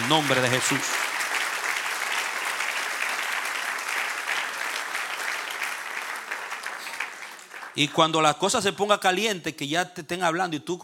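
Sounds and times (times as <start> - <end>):
large crowd applauding: 0.0 - 8.2
speech: 0.1 - 1.1, 7.8 - 10.8.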